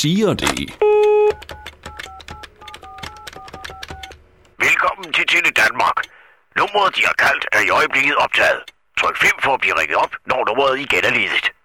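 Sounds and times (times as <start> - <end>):
speech: 0.0 - 0.9, 5.0 - 11.6
clicking phone key presses: 0.3 - 4.6
telephone dial tone: 0.8 - 4.1.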